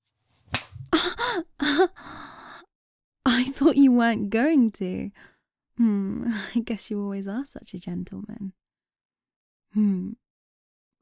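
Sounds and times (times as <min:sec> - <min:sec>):
hand slap on a bare buttock: 0:00.5 - 0:00.8
person making drawn-out wordless gasps or moans: 0:01.0 - 0:02.6
speech: 0:01.3 - 0:02.2, 0:03.4 - 0:08.6, 0:09.7 - 0:10.2.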